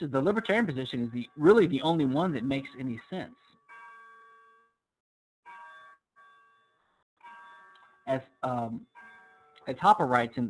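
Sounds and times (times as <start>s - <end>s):
speech: 0.0s - 3.5s, 8.1s - 8.9s, 9.6s - 10.4s
cuckoo clock chime phrases: 0.0s - 4.6s, 5.5s - 6.6s, 7.2s - 10.4s.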